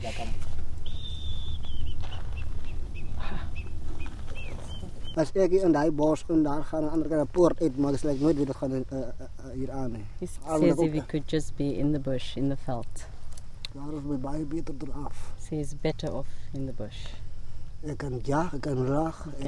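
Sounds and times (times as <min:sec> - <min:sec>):
thin bird call: 0:00.0 - 0:05.4
low outdoor rumble during a hike: 0:00.0 - 0:19.4
Bushman man whistling warbling bird calls imitating the bird: 0:00.8 - 0:05.2
speech: 0:05.2 - 0:13.1, 0:13.7 - 0:17.2, 0:17.8 - 0:19.4.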